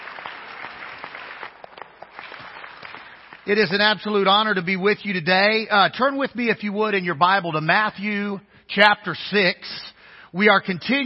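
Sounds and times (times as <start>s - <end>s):
church audience clapping in praise during a morning service: 0.0s - 4.3s
speech: 3.4s - 11.0s.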